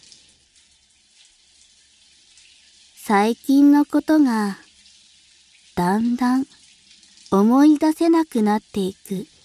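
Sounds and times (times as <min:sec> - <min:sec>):
hot water running: 0:00.0 - 0:09.4
speech: 0:03.1 - 0:04.6, 0:05.8 - 0:06.6, 0:07.3 - 0:09.4.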